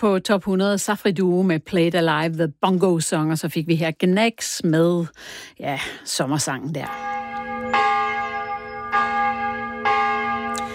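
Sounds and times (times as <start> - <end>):
speech: 0.0 - 7.3
church bell tolling: 6.8 - 10.7.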